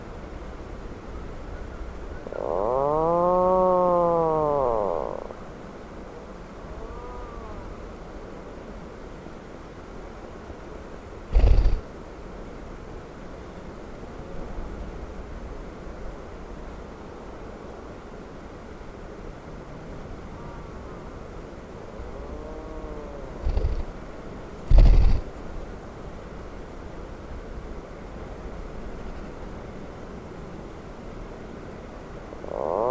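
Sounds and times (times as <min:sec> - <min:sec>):
Atlantic puffin calling: 0:02.2 - 0:05.4, 0:11.3 - 0:11.8, 0:22.1 - 0:23.9, 0:32.4 - 0:32.8.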